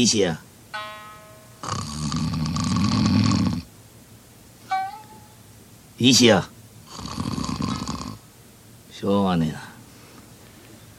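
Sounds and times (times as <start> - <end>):
speech: 0.0 - 0.5, 6.0 - 6.5, 9.0 - 9.7
voice imitating snore of a sleeping man: 1.6 - 3.7, 6.8 - 8.2.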